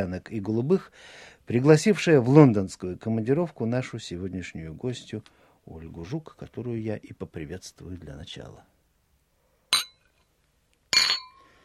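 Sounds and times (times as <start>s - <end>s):
speech: 0.0s - 8.7s
wine glasses clinking in a toast: 9.7s - 10.2s, 10.9s - 11.5s.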